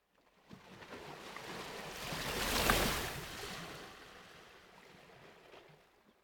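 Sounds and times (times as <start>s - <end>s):
gentle ocean water lapping on the coast: 0.1s - 6.2s
ocean surf on the coast: 1.1s - 4.2s.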